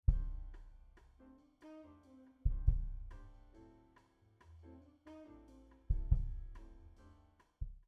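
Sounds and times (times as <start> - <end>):
raw kick drum: 0.0 - 0.7, 2.5 - 3.3, 5.9 - 6.7.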